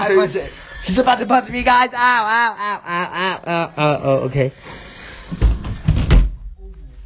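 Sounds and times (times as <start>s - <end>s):
speech: 0.1s - 4.7s
door slamming shut with heavy booming thuds: 5.4s - 6.5s.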